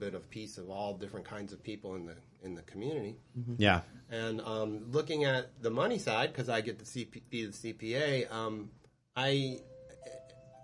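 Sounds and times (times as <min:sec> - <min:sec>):
speech: 0:00.0 - 0:10.2
doorbell chime: 0:09.6 - 0:10.6.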